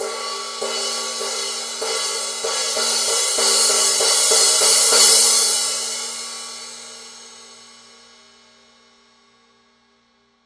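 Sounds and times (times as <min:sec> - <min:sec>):
crash-ride cymbal pattern: 0:00.0 - 0:07.5.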